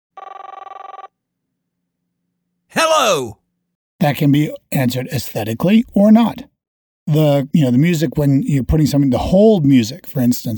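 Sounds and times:
telephone ringing with a rapid trilling bell: 0:00.2 - 0:01.1
speech: 0:02.8 - 0:03.4, 0:04.0 - 0:06.5, 0:07.1 - 0:10.5.

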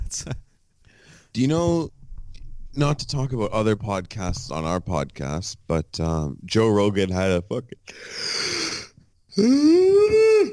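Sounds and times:
speech: 0:00.1 - 0:00.5, 0:01.3 - 0:02.0, 0:02.8 - 0:08.8, 0:09.4 - 0:10.5
person yawning: 0:08.0 - 0:10.5.

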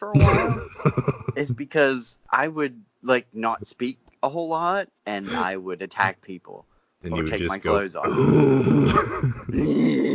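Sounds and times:
speech: 0:00.9 - 0:10.0
person imitating a dog's growl: 0:07.4 - 0:10.1.

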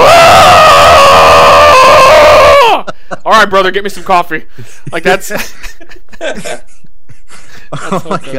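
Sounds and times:
man's voice imitating a man screaming as he gets out of bed: 0:00.0 - 0:02.8
speech: 0:03.3 - 0:06.9, 0:07.7 - 0:08.3
laughter: 0:04.6 - 0:08.3.

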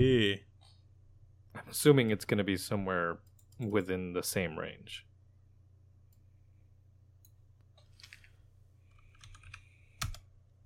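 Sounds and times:
speech: 0:00.0 - 0:00.5, 0:01.6 - 0:05.1
random letters typed on a computer keyboard: 0:08.9 - 0:10.3.

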